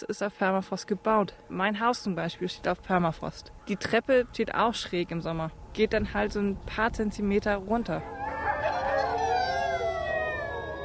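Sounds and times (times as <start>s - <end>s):
speech: 0.0s - 8.2s
chorus of chained hungry sled dogs howling at the edge of Ilulissat: 8.0s - 10.8s.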